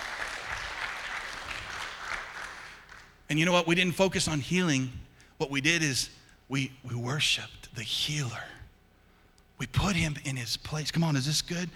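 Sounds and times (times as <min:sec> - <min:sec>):
audience applauding: 0:00.0 - 0:03.2
speech: 0:03.3 - 0:08.5, 0:09.6 - 0:11.7.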